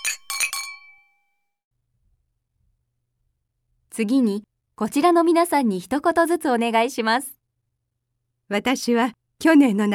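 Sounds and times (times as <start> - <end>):
glasses clinking together in a toast: 0.0 - 1.2
speech: 4.0 - 7.4, 8.5 - 9.9.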